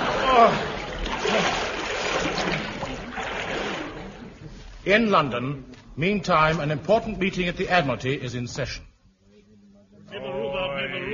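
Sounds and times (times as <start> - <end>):
churning, sloshing water turbulence: 0.0 - 4.8
speech: 0.4 - 0.7, 4.9 - 8.9.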